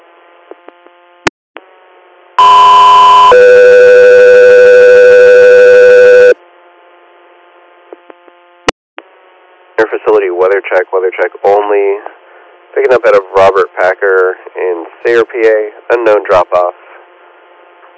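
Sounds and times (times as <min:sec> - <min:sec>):
two-part radio dispatch alert tone to an air medical unit: 0:02.4 - 0:06.4
radio static: 0:09.8 - 0:12.1, 0:12.8 - 0:17.0
speech: 0:10.5 - 0:12.2, 0:12.8 - 0:16.8.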